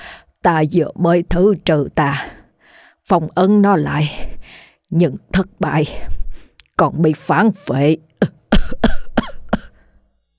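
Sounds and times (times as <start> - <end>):
speech: 0.4 - 2.4, 3.1 - 4.3, 4.9 - 6.2, 6.8 - 8.8
pale exhausted man coughing harshly: 8.2 - 9.8.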